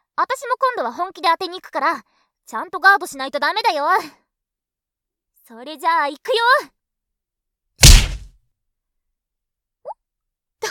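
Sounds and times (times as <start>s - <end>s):
speech: 0.2s - 4.2s, 5.5s - 6.8s
punch hitting a face with a heavy smacking thwack: 7.8s - 8.3s.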